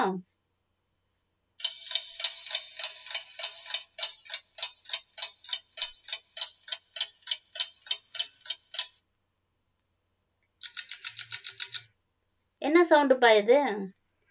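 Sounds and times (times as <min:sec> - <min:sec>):
speech: 0:00.0 - 0:00.3, 0:12.9 - 0:14.0
clock ticking: 0:01.6 - 0:09.0, 0:10.6 - 0:11.9.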